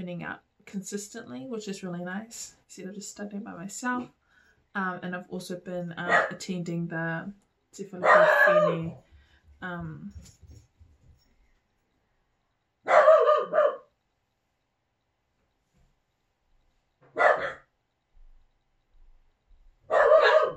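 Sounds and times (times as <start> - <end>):
speech: 0.0 - 10.4
dogs giving an emergency security bark: 8.0 - 8.9, 12.9 - 13.9, 17.1 - 17.7, 19.9 - 20.5.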